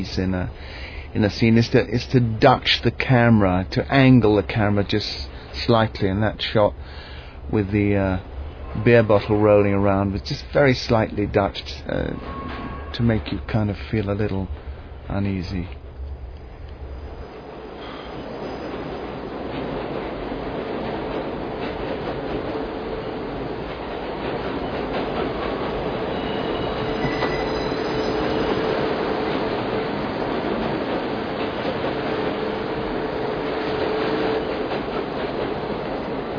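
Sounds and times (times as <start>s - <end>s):
speech: 0.0s - 15.8s
train rolling on rails: 0.0s - 36.3s
faint metallic squeals of train: 8.4s - 9.9s, 11.8s - 13.6s, 26.0s - 29.0s.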